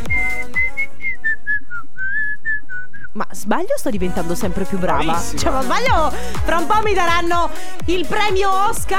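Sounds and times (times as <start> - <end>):
woman whistling a song melody: 0.0 - 3.2
speech: 3.2 - 8.9.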